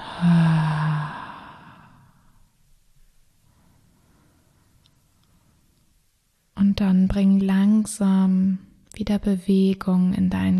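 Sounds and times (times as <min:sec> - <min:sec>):
person exhaling slowly during a guided breathing exercise: 0:00.0 - 0:02.4
speech: 0:07.1 - 0:08.4, 0:09.0 - 0:10.5.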